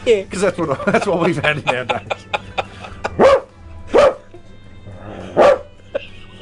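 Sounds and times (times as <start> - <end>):
speech: 0.0 - 2.6
laughter: 0.4 - 3.3, 5.9 - 6.4
dog barking: 3.1 - 4.3, 5.3 - 5.7.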